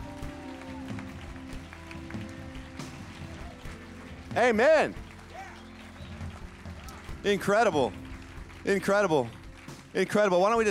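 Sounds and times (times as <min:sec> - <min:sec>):
scattered whoops from audience: 0:00.0 - 0:01.5, 0:05.3 - 0:06.2
large audience clapping: 0:00.0 - 0:10.6
sustained music playing: 0:00.0 - 0:10.6
speech: 0:04.4 - 0:05.0, 0:07.2 - 0:08.0, 0:08.6 - 0:09.4, 0:10.0 - 0:10.6.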